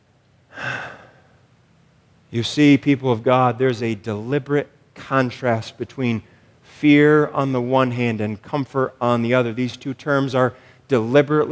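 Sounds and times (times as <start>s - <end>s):
deep breath: 0.5s - 1.4s, 10.5s - 10.9s
speech: 2.3s - 11.4s.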